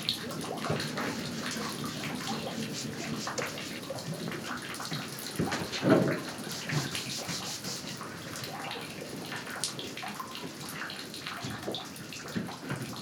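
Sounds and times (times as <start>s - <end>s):
water running and lapping beneath a wooden pontoon in Hafnarholmi harbour Iceland: 0.0s - 13.0s.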